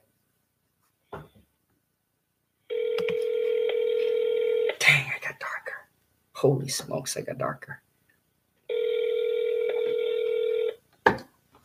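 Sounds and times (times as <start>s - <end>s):
telephone keypad tone as a phone number is punched in: 2.7s - 4.7s, 8.7s - 10.8s
speech: 6.4s - 7.8s.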